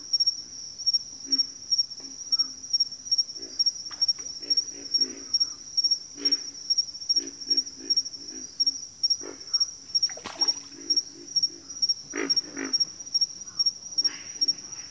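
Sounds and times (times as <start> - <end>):
pig frogs calling in a bayou: 3.4 - 14.8.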